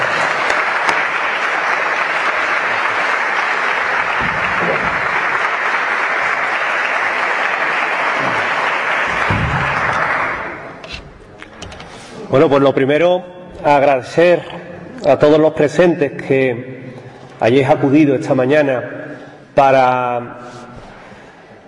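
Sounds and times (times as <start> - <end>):
conference audience applauding: 0.0 - 10.8
speech: 12.3 - 16.7, 17.4 - 19.0, 19.6 - 20.6.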